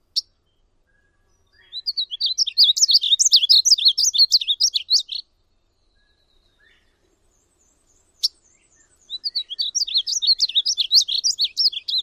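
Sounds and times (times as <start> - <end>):
male painted bunting song: 0.0 - 12.0
male painted bunting chip calls: 1.0 - 5.2, 8.2 - 12.0.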